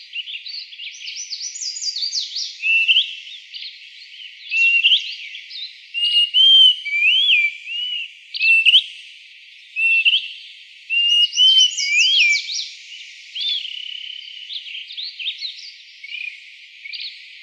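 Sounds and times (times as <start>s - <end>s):
greater pewee giving slurred rising and falling whistles in Arizona: 1.0s - 3.1s, 4.5s - 5.0s, 6.0s - 8.8s, 11.0s - 12.6s.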